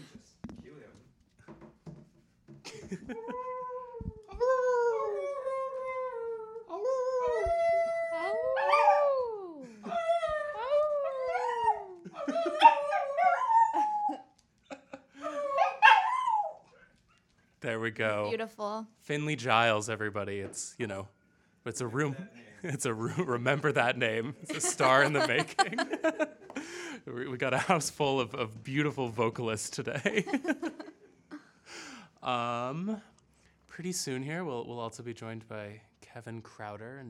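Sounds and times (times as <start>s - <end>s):
laughter: 2.7s - 3.4s, 22.6s - 28.2s, 29.8s - 31.1s
speech: 2.9s - 3.4s, 17.8s - 26.3s, 27.4s - 30.8s, 32.3s - 33.1s, 33.8s - 37.0s
dog howling: 3.2s - 14.2s, 15.3s - 16.7s.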